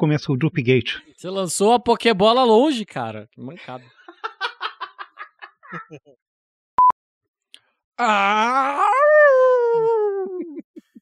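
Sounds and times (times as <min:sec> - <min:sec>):
speech: 0:00.0 - 0:04.0, 0:05.7 - 0:06.3, 0:08.0 - 0:09.9
laughter: 0:03.8 - 0:06.1
person imitating a wolf howl: 0:08.0 - 0:10.6
person yelping in wolf imitation: 0:08.0 - 0:10.6.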